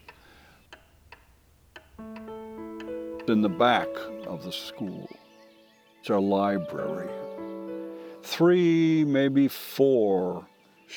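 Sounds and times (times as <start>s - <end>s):
old clock ticking: 0.0s - 4.6s
speech: 3.3s - 5.2s, 6.0s - 7.2s, 8.2s - 10.9s.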